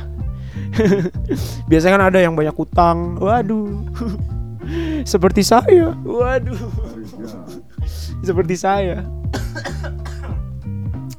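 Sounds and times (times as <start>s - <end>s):
laughter: 0.0s - 10.4s
harsh throaty coughing: 0.1s - 1.8s, 3.9s - 10.5s
speech: 0.6s - 7.6s, 8.2s - 9.2s.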